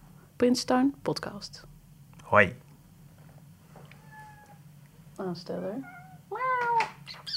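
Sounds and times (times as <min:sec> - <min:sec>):
steady low hum: 0:00.0 - 0:07.3
speech: 0:00.4 - 0:01.7, 0:02.3 - 0:02.6, 0:05.2 - 0:06.5
cat meowing: 0:03.9 - 0:04.6, 0:05.8 - 0:07.3.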